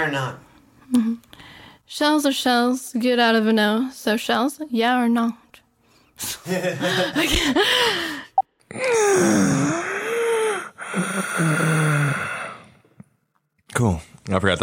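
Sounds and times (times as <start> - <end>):
speech: 0.0 - 5.4, 6.2 - 9.9, 10.9 - 11.8, 13.8 - 14.6
laughter: 6.4 - 7.7
person breathing strained during strenuous effort: 7.0 - 12.9.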